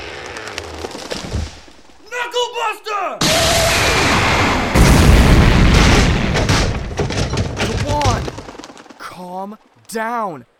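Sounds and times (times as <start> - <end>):
speech: 2.3 - 4.0, 9.2 - 10.5
explosive blast from a power attack knocking down trees in a forest: 3.2 - 8.5.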